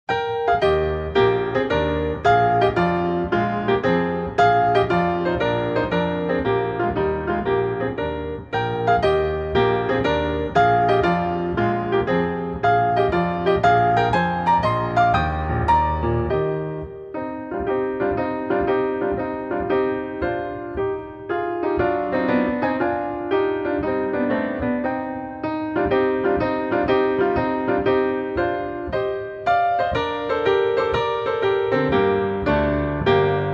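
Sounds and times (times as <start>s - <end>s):
group piano: 0.0s - 33.5s.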